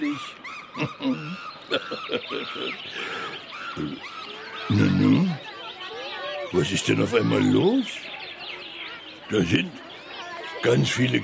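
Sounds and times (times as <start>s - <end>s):
speech: 0.0s - 1.5s, 6.6s - 8.1s, 9.3s - 9.8s, 10.6s - 11.2s
laughter: 0.0s - 4.0s
small birds chirping and twittering over a meadow in the morning: 0.0s - 11.2s.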